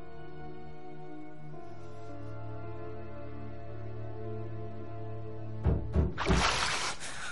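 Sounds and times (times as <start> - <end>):
hand swishing through water: 6.2 - 7.2.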